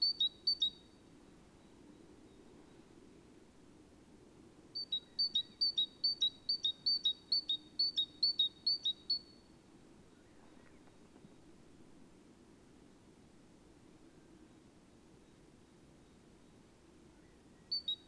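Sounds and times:
great tit Parus major whistling: 0.0s - 0.9s, 4.8s - 9.4s, 17.6s - 18.0s.

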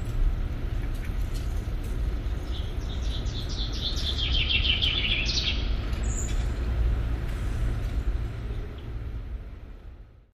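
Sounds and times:
steady low rumble: 0.0s - 10.3s
common chaffinch song: 2.2s - 6.8s.

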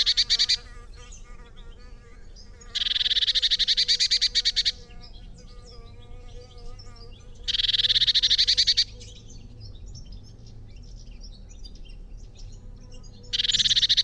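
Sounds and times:
Eurasian blue tit Cyanistes caeruleus buzzy churring: 0.0s - 9.1s, 13.0s - 14.0s.

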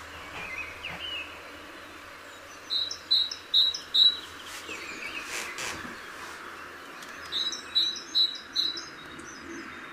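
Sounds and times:
great tit Parus major calling: 0.0s - 9.9s.

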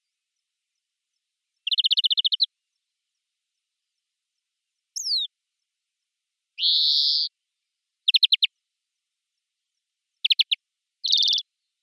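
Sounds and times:
European greenfinch Chloris chloris trills and wheezes: 1.6s - 2.5s, 5.0s - 5.3s, 6.6s - 7.3s, 8.1s - 8.5s, 10.2s - 11.4s.

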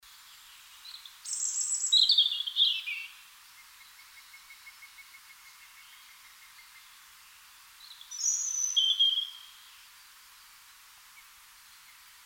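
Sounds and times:
European robin (Erithacus rubecula) song: 0.2s - 4.4s, 5.4s - 9.8s.

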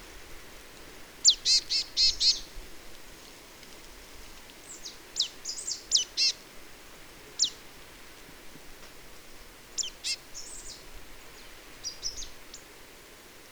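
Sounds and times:
Marsh tit Poecile palustris calling in sharp high descending notes: 1.2s - 2.4s, 4.7s - 6.4s, 7.4s - 7.6s, 9.8s - 10.8s.

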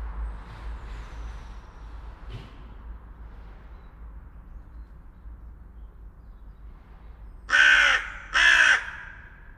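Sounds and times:
Carrion crow cawing, Corvus corone: 7.5s - 9.5s.

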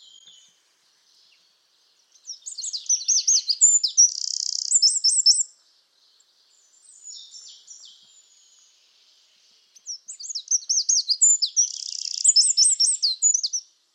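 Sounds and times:
Eurasian wren song trills, Troglodytes troglodytes: 0.0s - 13.9s.

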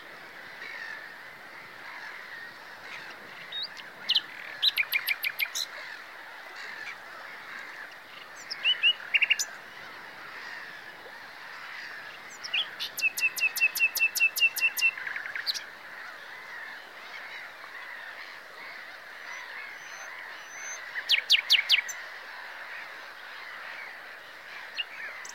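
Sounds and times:
Common nightingale Luscinia megarhynchos singing sharp chips and repeated notes: 3.4s - 5.9s, 8.2s - 9.6s, 12.2s - 15.7s, 19.2s - 22.0s, 24.6s - 25.3s.

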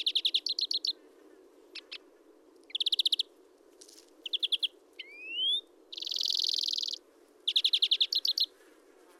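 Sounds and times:
European greenfinch Chloris chloris calling: 0.0s - 1.0s, 1.7s - 3.4s, 4.2s - 8.6s.

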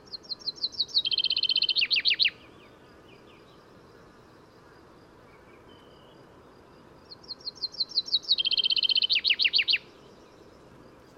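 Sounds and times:
common chaffinch Fringilla coelebs singing with trill and downslurred notes: 0.0s - 3.6s, 7.1s - 10.5s.

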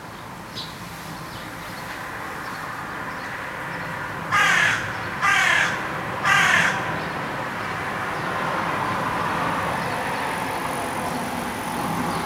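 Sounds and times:
steady background noise: 0.0s - 12.2s
carrion crow Corvus corone harsh caws: 4.3s - 7.0s.

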